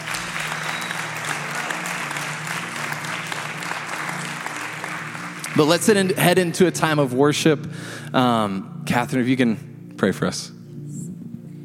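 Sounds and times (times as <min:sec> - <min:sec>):
room full of people applauding: 0:00.0 - 0:06.2
speech: 0:05.6 - 0:10.6.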